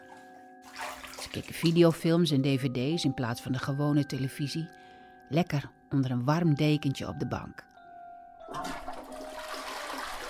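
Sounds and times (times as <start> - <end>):
speech: 1.3 - 7.7
toilet flushing with ditch water: 8.5 - 10.2.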